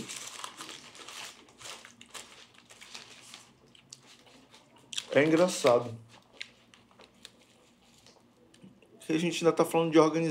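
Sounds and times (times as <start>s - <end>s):
person chewing a sandwich: 0.0s - 5.3s, 6.1s - 8.9s
speech: 5.2s - 6.1s, 9.1s - 10.2s.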